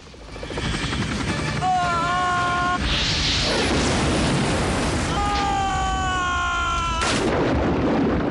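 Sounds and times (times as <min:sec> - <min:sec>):
helicopter rotor noise: 0:00.0 - 0:04.9
whooshing burst: 0:02.8 - 0:05.1
missile striking a helicopter: 0:03.0 - 0:05.9, 0:07.0 - 0:08.2.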